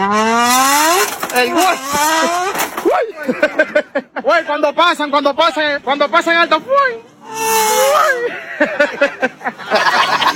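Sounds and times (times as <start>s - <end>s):
voice imitating a Ferrari engine shifting through its gears: 0.0s - 3.1s, 7.2s - 8.4s
speech: 1.4s - 10.3s
laughter: 2.1s - 4.7s, 7.9s - 10.3s.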